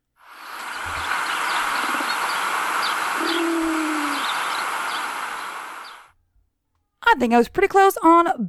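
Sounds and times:
hiss: 0.0 - 6.1
bird cooing: 0.3 - 6.0
speech: 7.2 - 8.4.

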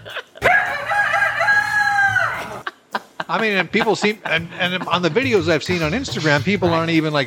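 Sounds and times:
laughter: 0.0 - 0.8, 2.3 - 6.3
man imitating a rooster crowing: 0.4 - 2.6
speech: 3.3 - 7.2.

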